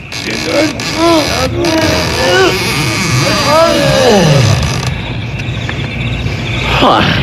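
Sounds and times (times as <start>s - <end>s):
big heavy doors creaking open: 0.0s - 5.3s
steady rushing noise: 0.0s - 7.2s.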